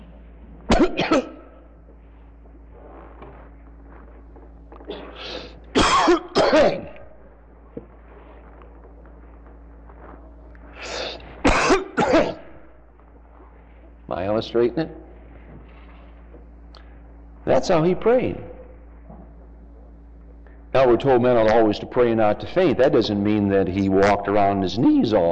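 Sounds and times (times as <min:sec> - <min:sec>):
faint low hum: 0:00.0 - 0:25.3
person coughing: 0:00.7 - 0:01.6, 0:04.8 - 0:07.0, 0:10.9 - 0:12.6
speech: 0:01.0 - 0:01.3, 0:14.4 - 0:15.0, 0:17.5 - 0:18.5, 0:20.8 - 0:25.3.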